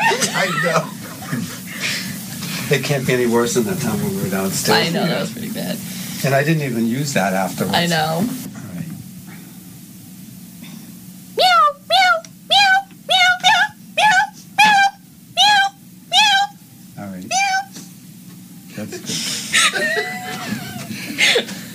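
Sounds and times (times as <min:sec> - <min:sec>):
laughter: 0:00.0 - 0:02.3, 0:18.7 - 0:21.7
low hum: 0:00.0 - 0:21.7
speech: 0:00.4 - 0:01.5, 0:02.7 - 0:08.5
cat meowing frantically: 0:17.3 - 0:17.8.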